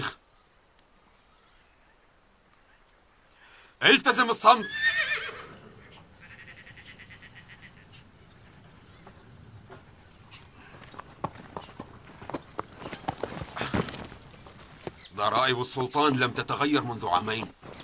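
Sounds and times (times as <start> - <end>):
speech: 3.8 - 5.0, 15.5 - 17.6
horse whinnying: 4.4 - 8.0
horse hooves clip-clopping: 5.2 - 17.8.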